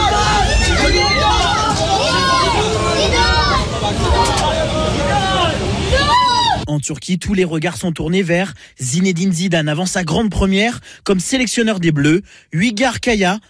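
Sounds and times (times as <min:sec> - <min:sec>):
about a hundred onlookers murmuring and chattering outdoors: 0:00.0 - 0:06.6
onlookers calling out: 0:00.0 - 0:06.6
team bus engine rumbling low: 0:00.0 - 0:06.7
speech: 0:06.8 - 0:13.4.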